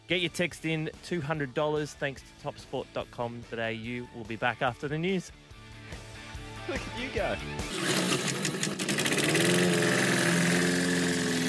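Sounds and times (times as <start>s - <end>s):
speech: 0.1s - 6.0s, 6.7s - 8.2s, 9.3s - 9.8s
lawn mower engine starting and idling: 7.7s - 11.4s.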